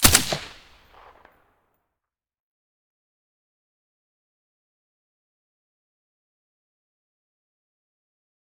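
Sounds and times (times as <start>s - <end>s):
silenced gunshot: 0.0s - 1.3s.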